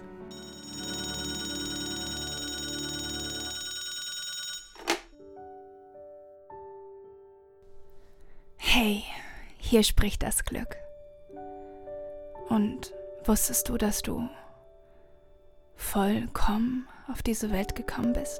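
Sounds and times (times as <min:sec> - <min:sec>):
soft sustained electronic tones: 0:00.3 - 0:04.9
telephone ringing: 0:00.3 - 0:05.3
speech: 0:08.8 - 0:10.8, 0:12.5 - 0:14.4, 0:15.8 - 0:18.3.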